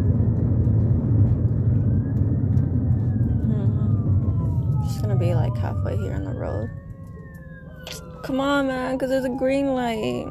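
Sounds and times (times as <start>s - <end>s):
faint siren wail: 0.0s - 10.3s
heavy fire truck passing on the road: 0.0s - 10.3s
speech: 5.2s - 6.8s, 8.3s - 10.3s.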